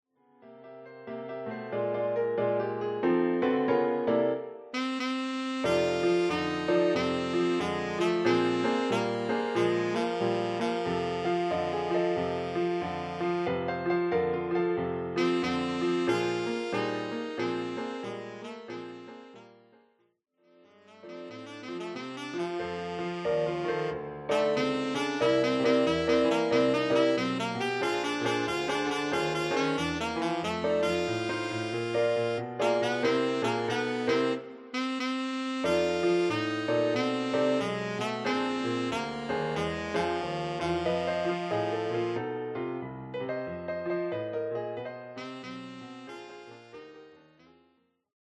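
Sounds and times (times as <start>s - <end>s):
piano accompaniment: 0.3s - 19.9s, 20.6s - 47.8s
alto saxophone playing blues: 4.7s - 13.8s, 15.1s - 19.6s, 20.7s - 42.3s, 45.0s - 47.5s.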